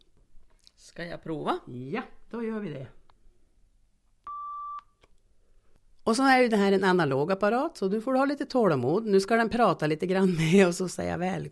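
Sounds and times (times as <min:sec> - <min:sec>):
speech: 0:01.0 - 0:03.0, 0:06.1 - 0:11.5
startup beep of an audio player: 0:04.3 - 0:05.0.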